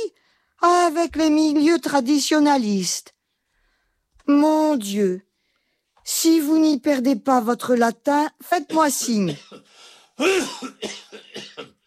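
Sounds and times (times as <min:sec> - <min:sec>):
speech: 0:00.6 - 0:03.2, 0:04.3 - 0:05.3, 0:06.1 - 0:11.8
man coughing in a rough hacking fit: 0:08.7 - 0:11.8.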